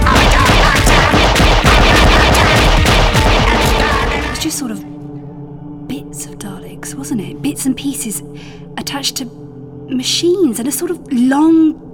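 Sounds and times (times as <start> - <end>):
rapid gunfire during an attack on a refueling station: 0.0 - 4.5
speech: 7.1 - 11.9.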